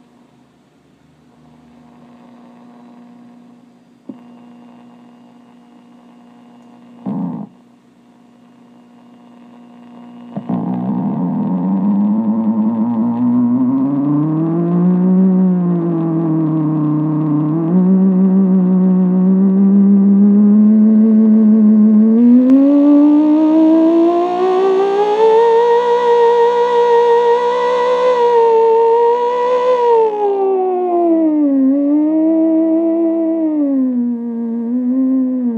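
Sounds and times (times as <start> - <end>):
B3 theremin tone: 10.3 - 35.5.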